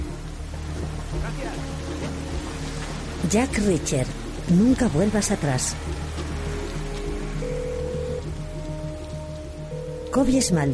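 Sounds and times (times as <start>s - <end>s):
heavy rain: 0.0s - 10.7s
low sustained musical tones: 0.0s - 10.7s
speech: 3.2s - 6.0s, 10.1s - 10.7s.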